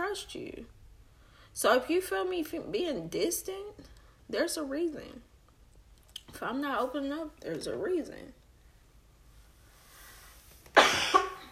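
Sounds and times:
speech: 0:00.1 - 0:00.8, 0:01.6 - 0:05.3, 0:06.3 - 0:08.4
harsh coughing: 0:10.7 - 0:11.5.

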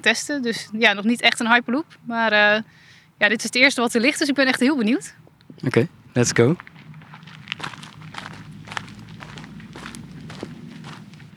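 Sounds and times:
speech: 0:00.0 - 0:06.7
low rumble: 0:02.6 - 0:11.3
footsteps walking on a sandy dirt road: 0:06.2 - 0:11.3.

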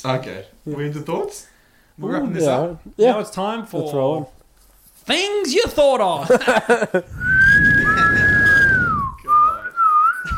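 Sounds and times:
speech: 0:00.0 - 0:04.4, 0:05.0 - 0:07.4
laughter: 0:06.2 - 0:07.1
person whistling two notes at once in a loud double whistle: 0:07.1 - 0:10.3.

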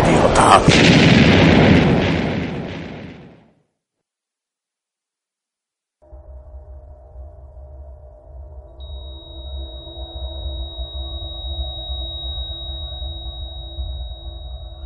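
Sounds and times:
huge explosion destroying a convoy: 0:00.0 - 0:03.5
speech: 0:00.5 - 0:01.0
faint higher hum: 0:06.0 - 0:14.8
steady low mechanical drone: 0:06.0 - 0:14.8.

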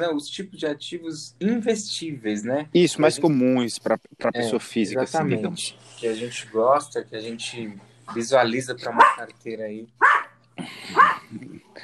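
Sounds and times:
speech: 0:00.0 - 0:10.1
dog barking: 0:08.9 - 0:09.3, 0:10.0 - 0:11.2.

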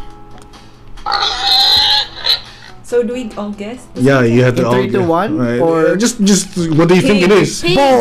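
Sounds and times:
pig letting out a loud drawn-out squealing oink: 0:01.0 - 0:02.8
speech: 0:02.9 - 0:08.0.

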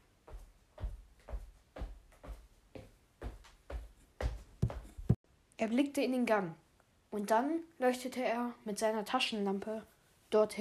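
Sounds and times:
heavy trampling footsteps: 0:00.3 - 0:05.2
speech: 0:05.6 - 0:10.5.

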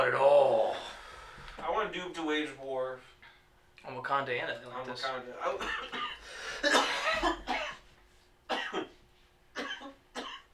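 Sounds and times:
speech: 0:01.9 - 0:03.2, 0:03.8 - 0:07.4
person coughing harshly: 0:05.6 - 0:07.8, 0:08.5 - 0:09.0, 0:09.6 - 0:10.5.

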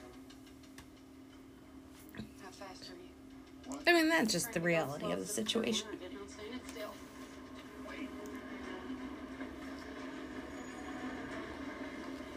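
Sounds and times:
speech: 0:02.6 - 0:07.1
train rumbling past: 0:07.8 - 0:12.3.

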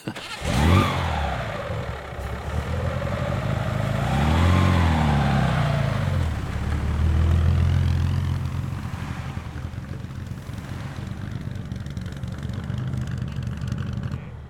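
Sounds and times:
1938 Alfa Romeo racing car engine revving hard: 0:00.1 - 0:14.4.

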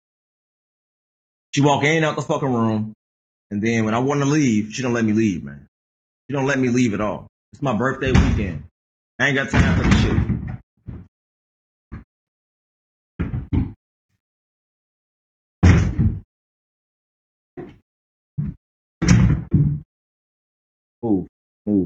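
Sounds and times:
speech: 0:01.5 - 0:05.7, 0:06.3 - 0:10.3, 0:21.0 - 0:21.8
chair shoved and knocked against a door to barricade it: 0:09.6 - 0:11.1, 0:13.2 - 0:13.8, 0:15.6 - 0:16.2, 0:17.6 - 0:17.8, 0:18.4 - 0:19.8.

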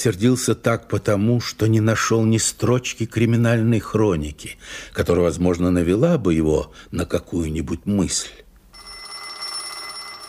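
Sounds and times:
speech: 0:00.0 - 0:08.4
telephone bell ringing: 0:08.7 - 0:10.2.

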